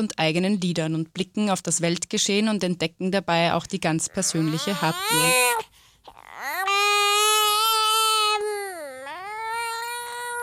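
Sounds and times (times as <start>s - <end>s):
speech: 0.0s - 5.7s
baby crying: 4.0s - 10.4s.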